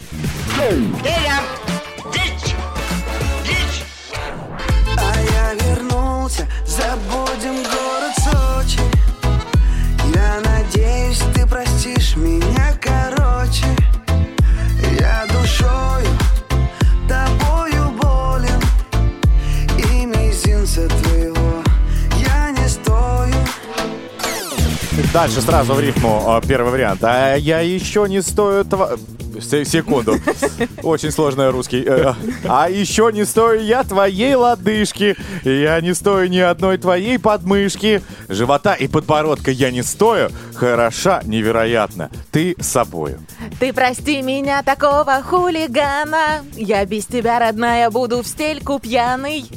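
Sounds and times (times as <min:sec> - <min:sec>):
song with full band and heavy bass played back loudly: 0:00.2 - 0:26.1
speech: 0:00.6 - 0:01.6, 0:25.2 - 0:49.5
prominent singing voice: 0:04.8 - 0:23.9
laughter: 0:29.7 - 0:32.8.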